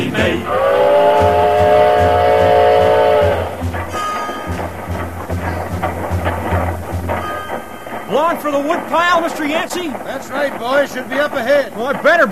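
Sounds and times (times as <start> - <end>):
wood-burning steam locomotive whistle: 0.0 - 8.4
wood-burning steam locomotive chugging along the track: 0.0 - 12.3
speech: 8.3 - 12.3.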